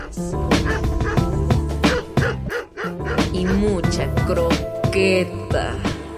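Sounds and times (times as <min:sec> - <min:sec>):
dog barking: 0:00.0 - 0:03.6
steady tonal bed: 0:00.0 - 0:05.2
speech: 0:00.2 - 0:00.6, 0:03.9 - 0:05.9.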